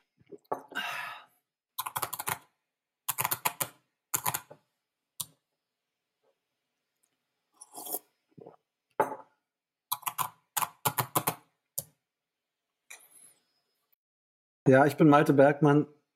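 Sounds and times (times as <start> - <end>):
typing on a computer keyboard: 1.8 - 2.5, 3.1 - 4.5, 9.9 - 11.4
man slurping coffee: 7.6 - 8.6
speech: 14.7 - 16.0.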